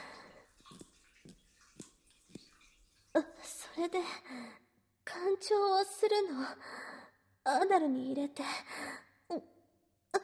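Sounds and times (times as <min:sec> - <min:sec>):
water gushing from an open shower hose with no head attached: 0:00.0 - 0:03.4
water splashing and dripping: 0:00.0 - 0:03.8
speech: 0:03.2 - 0:04.6, 0:05.2 - 0:06.8, 0:07.4 - 0:09.5.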